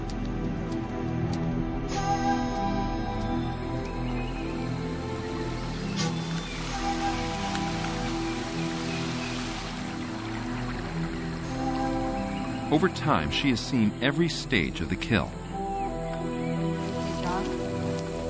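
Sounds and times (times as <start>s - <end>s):
steady rain falling in a forest on leaves and ground: 0.0s - 13.0s, 16.6s - 18.2s
speech: 12.7s - 15.4s.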